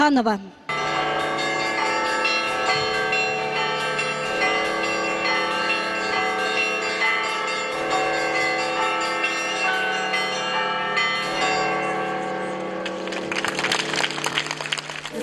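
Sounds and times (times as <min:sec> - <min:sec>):
church bells pealing at a bell festival, rung by a bell ringer: 0:00.7 - 0:15.2
faint clapping: 0:12.8 - 0:15.2.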